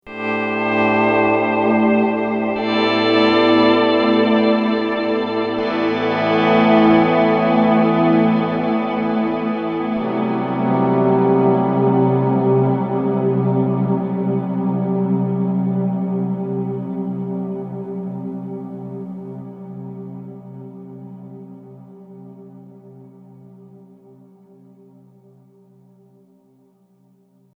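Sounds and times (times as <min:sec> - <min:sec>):
ambient guitar: 0:00.1 - 0:25.7.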